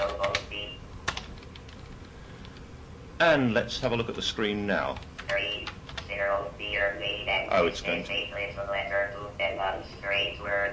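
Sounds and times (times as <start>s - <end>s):
typing on a computer keyboard: 0.0s - 0.5s, 1.1s - 2.6s
speech: 3.2s - 5.5s, 6.7s - 10.7s.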